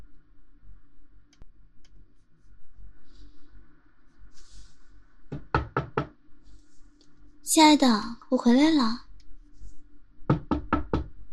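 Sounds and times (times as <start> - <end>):
faint hum: 0.0 - 11.3
quick knocks on a door: 5.3 - 6.2, 10.3 - 11.2
speech: 7.5 - 9.0.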